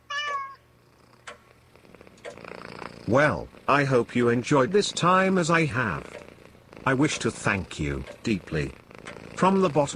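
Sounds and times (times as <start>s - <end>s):
pet cat meowing: 0.0s - 0.6s
speech: 3.1s - 6.2s, 6.8s - 8.8s, 9.4s - 9.9s.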